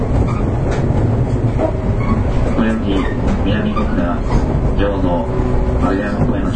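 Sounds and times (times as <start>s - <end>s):
JR 415 series electric train in motion heard from inside: 0.0s - 6.5s.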